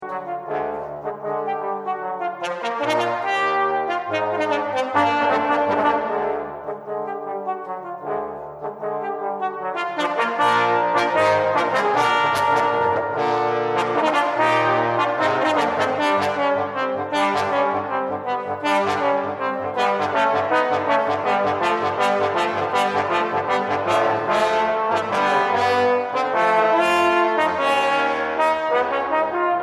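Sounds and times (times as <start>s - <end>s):
trombone quartet playing: 0.0s - 29.6s.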